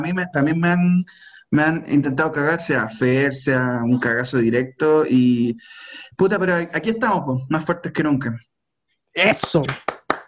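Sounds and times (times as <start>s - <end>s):
speech: 0.0s - 8.5s, 9.2s - 9.9s
sharp hand claps: 9.4s - 10.2s.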